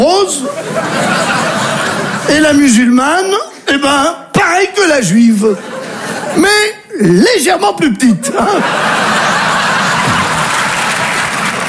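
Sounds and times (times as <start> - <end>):
speech: 0.0 - 1.2, 2.3 - 5.7, 6.3 - 9.1
audience chuckles and laughter: 0.3 - 2.3, 5.5 - 6.6, 8.2 - 11.6
audience applause: 8.7 - 11.6.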